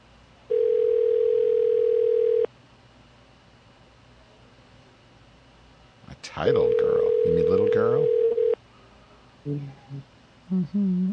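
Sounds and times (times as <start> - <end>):
telephone voicemail transfer tone: 0.5 - 2.5, 6.6 - 8.6
speech: 6.4 - 8.2, 9.4 - 11.1.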